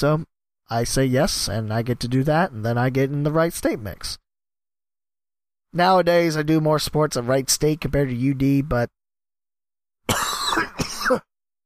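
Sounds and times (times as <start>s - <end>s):
speech: 0.0s - 4.2s, 5.7s - 9.0s, 10.1s - 10.3s, 11.1s - 11.3s
person coughing with a chesty irritated cough: 10.1s - 11.3s.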